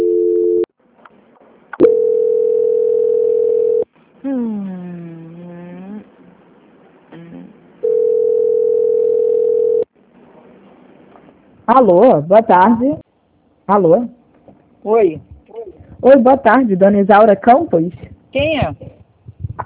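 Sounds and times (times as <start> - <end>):
telephone tones during call transfer: 0.0 - 0.7, 1.8 - 3.9, 7.8 - 9.9
wavering voice-like passage: 4.2 - 6.2, 7.1 - 7.6
speech: 11.7 - 13.0, 13.7 - 14.2, 14.8 - 15.3, 16.0 - 18.9.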